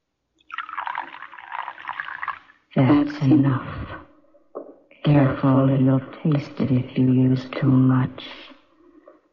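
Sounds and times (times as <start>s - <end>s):
liquid pouring from a bottle into a cup of cocoa: 0.4s - 3.2s
speech: 2.8s - 3.8s, 5.4s - 8.5s.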